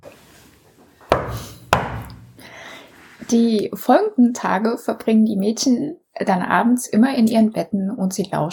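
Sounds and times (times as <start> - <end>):
sharp knocks on wood: 1.1 - 2.3
speech: 3.3 - 8.5.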